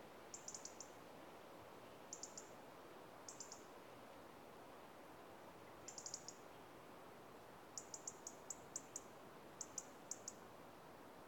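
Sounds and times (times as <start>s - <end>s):
faint steady background hiss: 0.0s - 11.2s
European robin Erithacus rubecula ticking calls: 0.3s - 0.9s, 2.1s - 2.5s, 3.3s - 3.7s, 5.9s - 6.4s, 7.8s - 10.4s.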